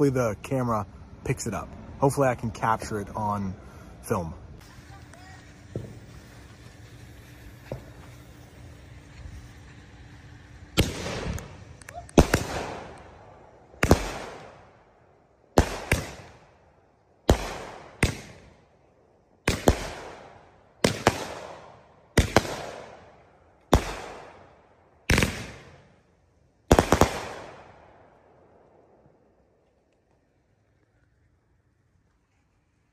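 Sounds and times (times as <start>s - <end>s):
speech: 0.0s - 4.4s
crackling of fireworks as particles rain down: 4.2s - 32.9s
fireworks exploding in a residential neighborhood: 4.6s - 13.2s, 13.8s - 14.7s, 15.5s - 16.5s, 17.2s - 18.6s, 19.5s - 23.1s, 25.1s - 26.0s, 26.7s - 28.1s.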